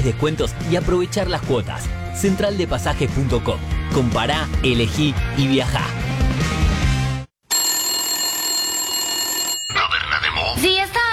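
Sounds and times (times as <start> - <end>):
speech: 0.0 - 6.3, 10.6 - 11.0
loud telephone bell ringing with a metallic trill: 7.5 - 10.2.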